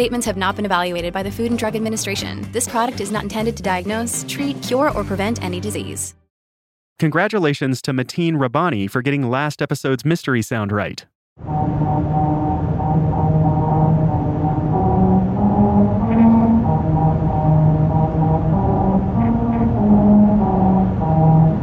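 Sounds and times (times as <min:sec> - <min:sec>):
speech: 0:00.0 - 0:06.2, 0:07.0 - 0:12.2
car tires on musical highway grooves in Lancaster, California: 0:11.4 - 0:21.6.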